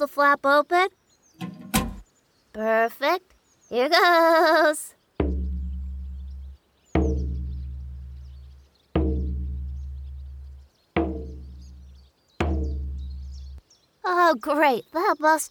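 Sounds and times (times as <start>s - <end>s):
speech: 0.0s - 1.5s, 2.6s - 5.0s, 14.1s - 15.4s
drum banged loudly against a door: 1.4s - 2.0s, 5.2s - 13.6s.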